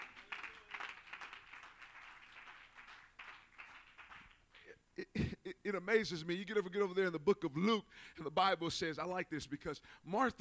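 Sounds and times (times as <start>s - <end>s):
crowd clapping hands to give God praise: 0.0s - 4.7s
speech: 5.7s - 10.3s.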